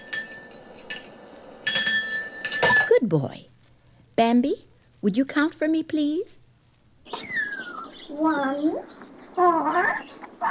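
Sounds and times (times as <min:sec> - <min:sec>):
small hand bell ringing: 0:00.0 - 0:02.9
speech: 0:03.0 - 0:03.5, 0:04.2 - 0:06.4, 0:08.1 - 0:10.4.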